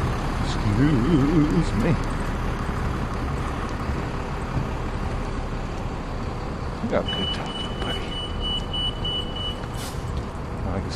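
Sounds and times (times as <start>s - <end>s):
bus engine idling with deep rumble: 0.0s - 10.9s
speech: 0.7s - 2.2s, 6.9s - 7.6s
bus kneeling beeping: 7.0s - 9.6s.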